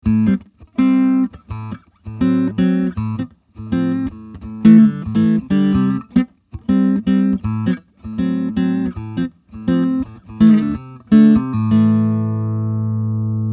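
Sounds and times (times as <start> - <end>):
clean electric guitar through Vox MV50 amplifier, middle pickup: 0.0 - 13.5.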